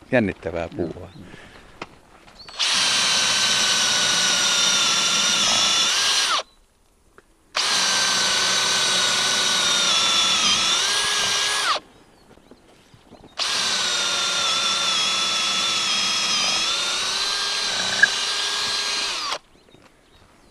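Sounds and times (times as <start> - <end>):
speech: 0.1 - 1.5
power drill boring holes into tree trunk: 2.5 - 6.4, 7.6 - 11.8, 13.4 - 19.4.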